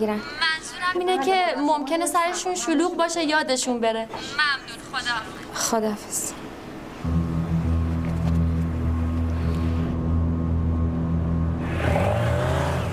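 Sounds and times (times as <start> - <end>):
speech: 0.0 - 6.4
approaching motorcycle engine drone: 7.0 - 12.9.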